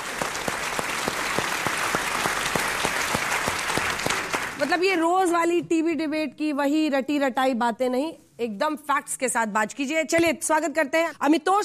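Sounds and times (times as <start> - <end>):
audience applause: 0.0 - 4.8
rhythmic clapping: 0.0 - 5.0
speech: 4.6 - 11.6.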